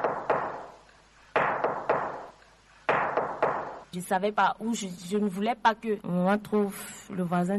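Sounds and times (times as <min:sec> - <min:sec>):
firm knocking on a door: 0:00.0 - 0:00.7, 0:01.4 - 0:03.9
speech: 0:03.9 - 0:07.5.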